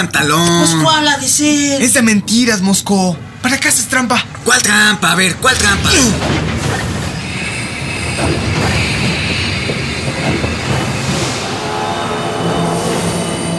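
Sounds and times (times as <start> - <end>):
speech: 0.0 - 6.9, 8.2 - 8.9
train carriage rolling on rails: 0.0 - 13.5
train wheels rattling and squealing: 4.4 - 13.5.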